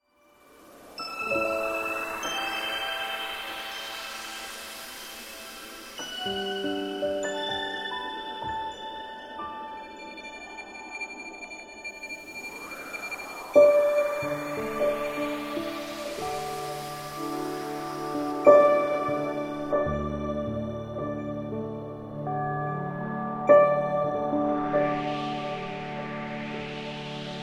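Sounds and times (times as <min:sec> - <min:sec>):
meditation soundscape in the snow: 0:00.2 - 0:27.4.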